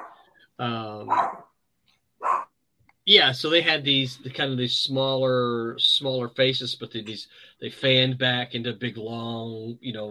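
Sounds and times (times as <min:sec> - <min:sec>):
speech: 0:00.6 - 0:01.4, 0:03.1 - 0:10.0
dog barking at people outside: 0:01.0 - 0:01.4, 0:02.2 - 0:02.4.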